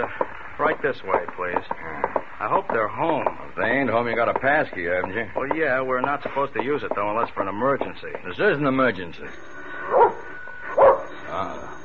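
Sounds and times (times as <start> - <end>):
speech: 0.0 - 9.6
dog barking behind an apartment door: 9.9 - 11.1.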